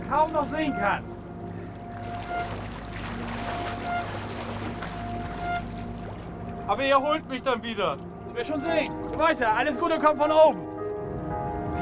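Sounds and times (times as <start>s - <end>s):
ship engine drone moving away on the water: 0.0s - 9.2s
water noise: 0.0s - 9.8s
speech: 0.1s - 1.1s, 6.7s - 10.7s.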